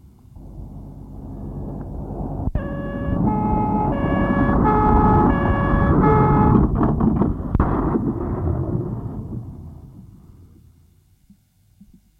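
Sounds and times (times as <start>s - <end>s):
low engine rumble: 0.0s - 11.9s
ambulance siren alternating between two pitches: 2.4s - 6.8s.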